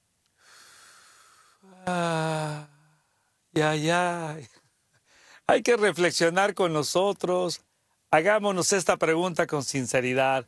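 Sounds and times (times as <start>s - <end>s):
long airy deep inhale: 0.4s - 1.8s, 5.1s - 5.4s
speech: 3.6s - 4.6s, 5.5s - 10.4s.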